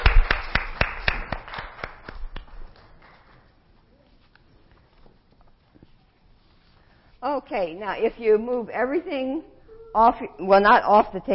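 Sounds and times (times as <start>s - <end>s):
group clapping their hands in a steady rhythm: 0.0s - 3.4s
speech: 7.2s - 11.3s.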